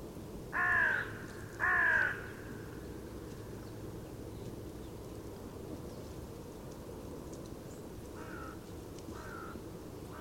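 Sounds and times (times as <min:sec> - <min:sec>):
Carrion crow Corvus corone giving hoarse flat caws: 0:00.6 - 0:02.4, 0:08.2 - 0:10.2.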